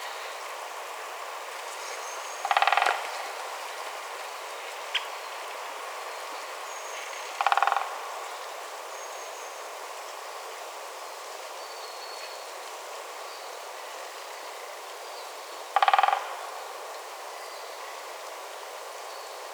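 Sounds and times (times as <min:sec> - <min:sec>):
white-backed woodpecker sound: 0:02.4 - 0:03.1, 0:07.4 - 0:07.9, 0:15.8 - 0:16.4.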